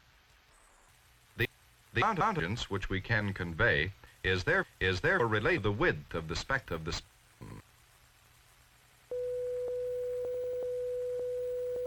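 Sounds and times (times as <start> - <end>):
speech: 1.4 - 7.5
500-cycle sine wave test tone: 9.1 - 11.8.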